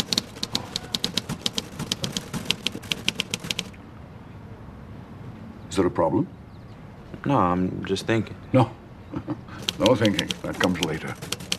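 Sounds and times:
typing on a typewriter: 0.0 - 3.7, 9.6 - 11.5
speech: 5.8 - 6.4, 7.2 - 11.4.

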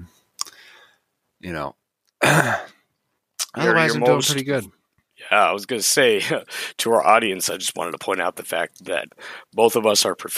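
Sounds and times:
speech: 1.4 - 2.7, 3.6 - 10.3
rough cough-like clearing of the throat: 2.2 - 2.8.

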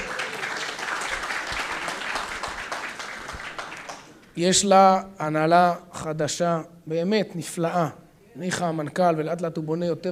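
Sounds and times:
audience applause: 0.0 - 4.2
speech: 4.4 - 10.1.

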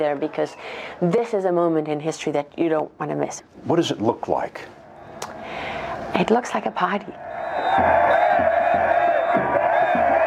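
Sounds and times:
speech: 0.0 - 4.8, 5.5 - 10.2
revolutionary crowd roaring with excitement in a square in Egypt: 6.9 - 10.2.

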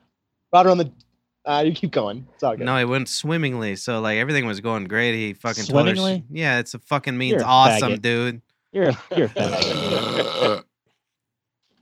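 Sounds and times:
speech: 0.5 - 10.7
laughter: 8.8 - 10.6
person burping: 9.2 - 10.7.

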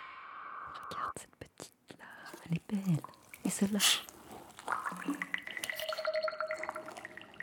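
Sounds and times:
speech: 0.7 - 4.1
water bubbling with gurgling pops: 2.6 - 7.4.

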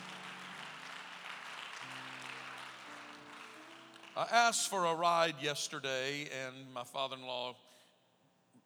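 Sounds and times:
church audience clapping in praise: 0.0 - 5.4
speech: 4.2 - 7.6.

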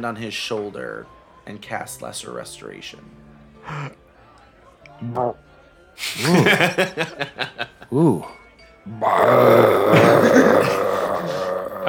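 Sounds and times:
speech: 0.0 - 4.0, 5.0 - 10.8
laughter: 6.0 - 8.0, 9.8 - 11.6
long loud guttural belch: 8.9 - 11.8.

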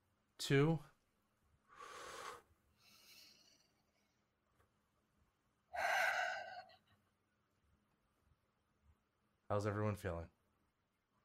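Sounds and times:
speech: 0.5 - 0.9, 9.5 - 10.4
group of people taking a deep breath together: 1.7 - 4.0, 5.8 - 6.8.

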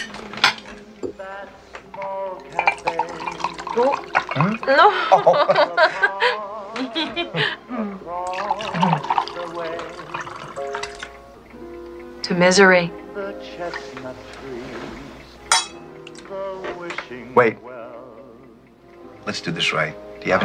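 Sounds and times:
wine pouring into a glass for a toast: 2.4 - 4.7, 8.2 - 11.2
speech: 3.8 - 7.6, 12.3 - 14.3, 17.1 - 17.7, 19.3 - 20.4
laughter: 4.4 - 8.0.

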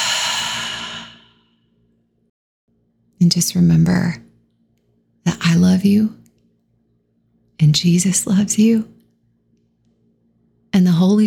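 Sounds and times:
deep breathy exhale out through the mouth in a relaxation breath: 0.0 - 1.5
speech: 3.2 - 4.3, 5.8 - 6.2, 7.6 - 9.0, 10.8 - 11.2.

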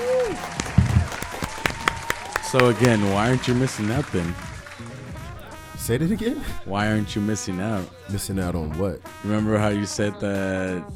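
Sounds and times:
applause: 0.0 - 5.5
speech: 2.5 - 4.5, 5.8 - 10.9.

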